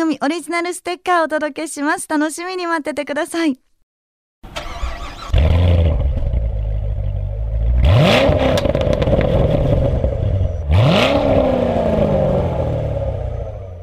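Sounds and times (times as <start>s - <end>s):
speech: 0.1s - 3.7s
Corvette American sports car engine cranking: 4.5s - 6.5s
Corvette sports car engine rumbling idle: 4.6s - 10.8s
Corvette American sports car engine revving hard: 5.3s - 13.8s.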